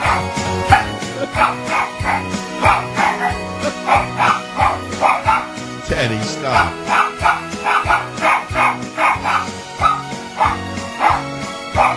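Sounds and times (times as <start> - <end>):
poodle barking in sharp yaps: 0.0 - 5.5, 6.6 - 11.9.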